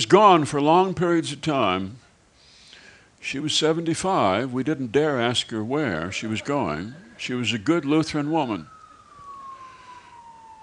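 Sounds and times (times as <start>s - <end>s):
speech: 0.0s - 2.0s, 3.2s - 8.8s
police siren wailing: 5.0s - 10.6s
traffic-like noise: 5.0s - 10.6s.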